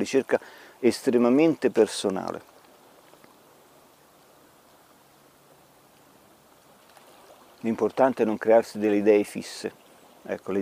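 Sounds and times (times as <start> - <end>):
speech: 0.0 - 2.5, 7.6 - 10.6
stream water flowing over stones: 0.0 - 10.6.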